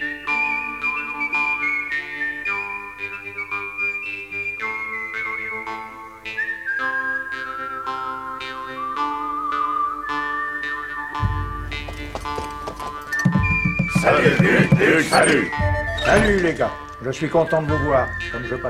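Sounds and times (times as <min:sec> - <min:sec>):
whistled melody: 0:00.0 - 0:18.6
horse hooves clip-clopping at a walking pace: 0:11.5 - 0:14.8
laughter: 0:13.9 - 0:16.6
speech: 0:14.2 - 0:18.6.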